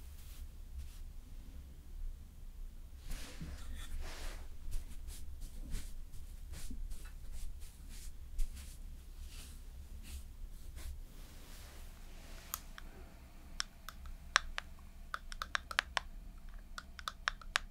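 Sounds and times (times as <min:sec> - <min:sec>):
soft makeup brushing and patting: 0:00.0 - 0:01.1, 0:03.0 - 0:12.8
steady low hum: 0:00.0 - 0:17.6
sharp scattered taps and clicks: 0:13.6 - 0:17.6.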